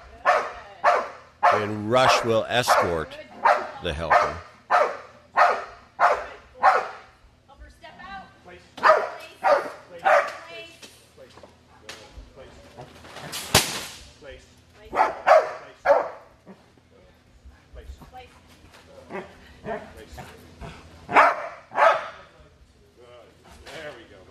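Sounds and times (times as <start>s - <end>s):
dog barking during a Mondio ring bark and hold on a training field: 0.2s - 1.7s, 3.4s - 7.1s, 8.8s - 10.5s, 14.9s - 16.3s, 21.1s - 22.2s
speech: 1.6s - 4.5s.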